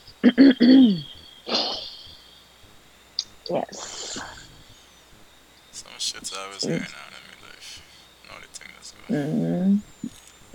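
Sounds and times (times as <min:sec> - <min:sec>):
speech: 0:00.2 - 0:01.7, 0:03.5 - 0:04.4, 0:06.0 - 0:07.2, 0:08.8 - 0:10.5
person with a sore throat clearing their throat: 0:00.2 - 0:01.9.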